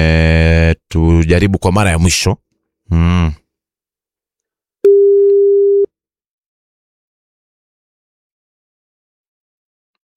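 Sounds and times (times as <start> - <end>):
speech: 1.0 - 3.4
telephone busy signal as a call fails to go through: 4.9 - 5.9.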